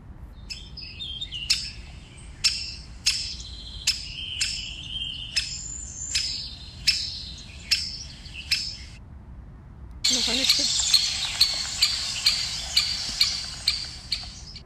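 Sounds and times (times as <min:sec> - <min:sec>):
birds chirping: 0:00.5 - 0:09.0, 0:10.0 - 0:14.6
woodpecker calling: 0:01.3 - 0:09.0, 0:10.1 - 0:14.6.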